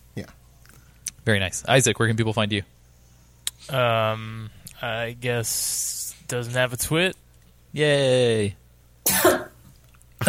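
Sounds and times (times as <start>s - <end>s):
speech: 0.2s - 0.4s, 1.2s - 2.8s, 3.6s - 9.4s
sharp raspy cough: 9.1s - 9.6s.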